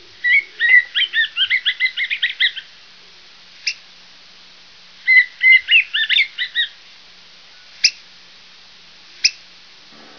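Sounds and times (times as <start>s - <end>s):
black-headed grosbeak: 0.2s - 2.7s, 5.0s - 6.8s, 7.8s - 8.0s.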